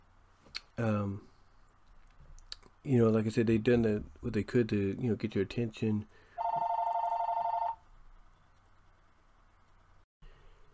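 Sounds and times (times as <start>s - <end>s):
low hum: 0.0s - 10.7s
speech: 0.8s - 1.3s, 2.8s - 6.2s
telephone ringing with an electronic trill: 6.4s - 7.8s.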